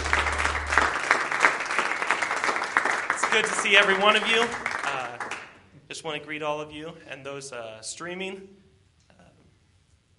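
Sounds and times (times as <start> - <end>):
low hum: 0.0 - 1.3
congregation clapping hands in praise at a Christmas church service: 0.0 - 5.6
speech: 3.4 - 4.7, 5.9 - 8.6.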